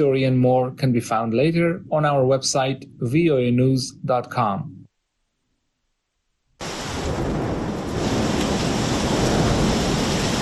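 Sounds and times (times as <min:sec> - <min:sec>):
speech: 0:00.0 - 0:04.8
torrential rain pouring during a storm in central Athens: 0:06.6 - 0:10.4.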